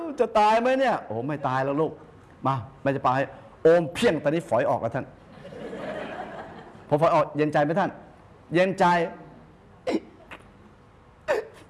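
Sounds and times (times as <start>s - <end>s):
speech: 0.2s - 5.6s, 6.9s - 9.2s
laughter: 5.3s - 6.9s
child hiccuping: 9.9s - 10.5s, 11.2s - 11.6s.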